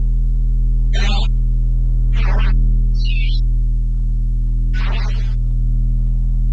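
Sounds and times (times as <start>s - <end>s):
computer hum: 0.9s - 1.4s, 2.0s - 6.5s.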